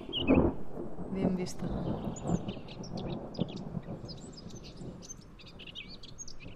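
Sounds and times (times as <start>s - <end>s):
chorus of chirping birds: 0.0s - 0.6s, 1.2s - 6.5s
thunder rumbling in a summer storm: 0.0s - 6.5s
speech: 1.2s - 4.2s.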